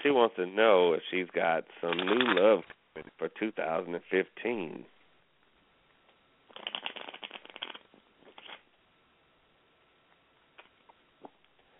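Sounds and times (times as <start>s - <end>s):
speech: 0.0s - 4.9s
deck of playing cards riffling: 1.9s - 2.6s, 6.5s - 8.6s.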